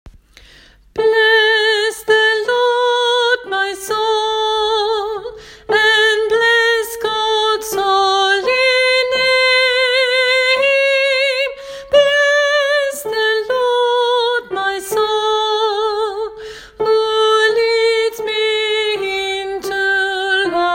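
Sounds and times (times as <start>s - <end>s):
tenor singing: 1.0s - 20.7s.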